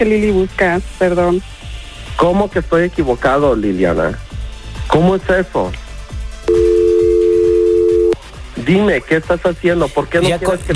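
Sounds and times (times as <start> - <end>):
speech: 0.0 - 4.2, 4.9 - 5.8, 8.6 - 10.7
telephone dial tone after call hung up: 6.5 - 8.2.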